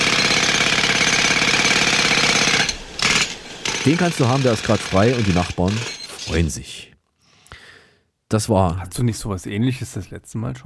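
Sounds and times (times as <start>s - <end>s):
jackhammer pounding: 0.0s - 6.4s
speech: 3.8s - 6.9s, 8.3s - 10.6s.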